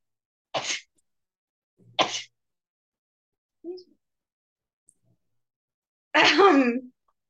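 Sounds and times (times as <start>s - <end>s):
loud sneezes: 0.6s - 0.9s, 2.0s - 2.4s.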